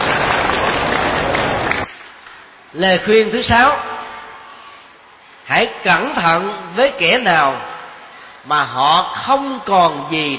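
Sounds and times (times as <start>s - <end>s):
audience applause: 0.0s - 1.9s
speech: 2.8s - 3.9s, 5.5s - 7.7s, 8.4s - 10.3s.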